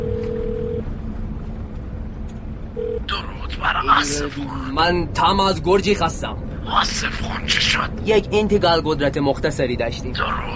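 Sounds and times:
short telephone tone as a phone call is placed: 0:00.0 - 0:00.8
rumbling noise: 0:00.0 - 0:10.5
steady low telephone line hum: 0:00.0 - 0:10.5
speech: 0:03.6 - 0:10.5.

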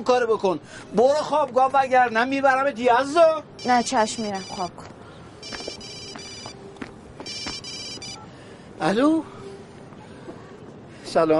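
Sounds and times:
speech: 0:00.0 - 0:05.7, 0:08.8 - 0:09.4, 0:11.1 - 0:11.3
telephone ringing with bright electronic trill: 0:03.6 - 0:04.7, 0:05.4 - 0:06.6, 0:07.2 - 0:08.3.

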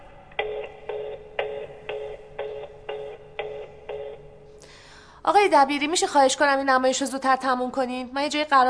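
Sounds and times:
telephone ringing with an electronic tone: 0:00.4 - 0:04.5
speech: 0:05.3 - 0:08.6.

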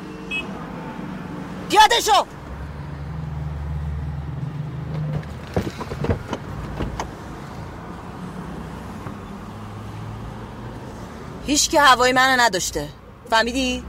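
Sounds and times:
speech: 0:01.7 - 0:02.4, 0:11.5 - 0:13.8
car rumbling as it moves off beside a street after dark: 0:02.4 - 0:10.9.

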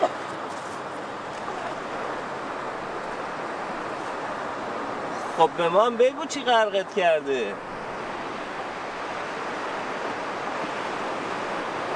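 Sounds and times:
sea waves washing onto the shore: 0:00.0 - 0:11.9
speech: 0:05.4 - 0:07.8.

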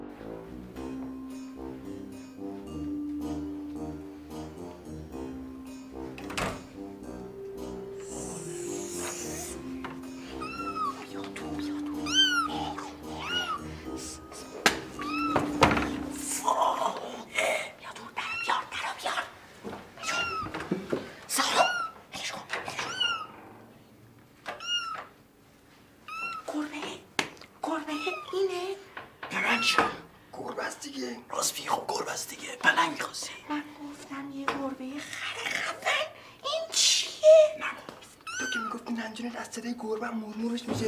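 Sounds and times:
low noise: 0:00.0 - 0:40.8
cat meowing: 0:10.3 - 0:13.6, 0:14.9 - 0:16.2, 0:18.1 - 0:18.8, 0:20.0 - 0:20.6, 0:21.5 - 0:22.0, 0:22.7 - 0:23.4, 0:24.5 - 0:25.1, 0:26.1 - 0:26.6, 0:27.7 - 0:28.5, 0:29.3 - 0:30.1, 0:38.2 - 0:38.9.

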